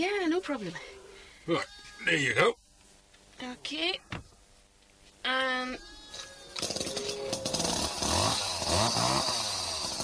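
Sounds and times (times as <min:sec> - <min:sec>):
speech: 0:00.0 - 0:02.6, 0:03.4 - 0:04.3, 0:05.2 - 0:06.0
chainsaw being tried out and revved: 0:06.6 - 0:10.0.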